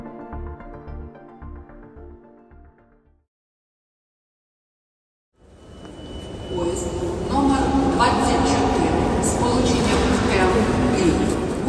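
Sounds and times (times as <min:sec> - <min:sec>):
train rolling along the rails of the Ukrainian railway: 0:05.4 - 0:11.6.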